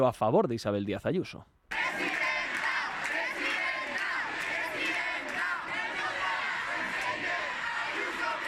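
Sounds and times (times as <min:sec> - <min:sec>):
speech: 0:00.0 - 0:01.6
crowd of students shouting chants in support: 0:01.7 - 0:08.4.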